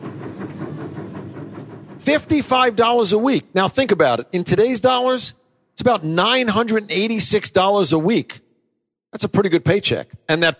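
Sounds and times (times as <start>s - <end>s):
Santa Fe passenger train rolling along the rails: 0.0s - 3.3s
speech: 2.0s - 8.4s, 9.1s - 10.5s.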